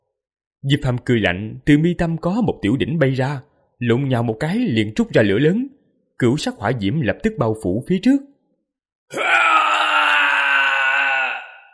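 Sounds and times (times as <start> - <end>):
speech: 0.6 - 8.3, 9.1 - 9.5
mournful wailing scream of a demon ghost: 9.1 - 11.7.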